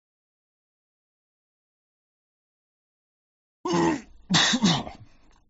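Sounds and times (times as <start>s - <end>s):
harsh hacking coughing fit: 3.7s - 5.1s.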